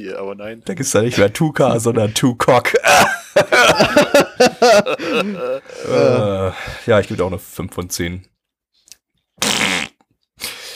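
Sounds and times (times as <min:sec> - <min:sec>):
speech: 0:00.0 - 0:08.3
laughter: 0:02.7 - 0:06.4
comedic fart sound effect: 0:09.4 - 0:10.0.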